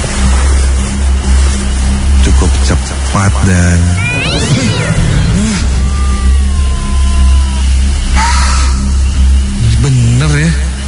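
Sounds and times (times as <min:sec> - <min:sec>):
steady low engine rumble: 0:00.0 - 0:10.8
speech: 0:03.2 - 0:04.7
cat meowing: 0:04.0 - 0:08.3.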